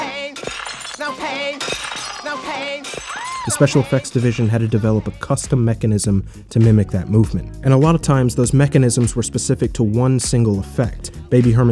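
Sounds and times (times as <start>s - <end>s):
plates shattering: 0.4s - 4.5s
speech: 1.0s - 11.6s.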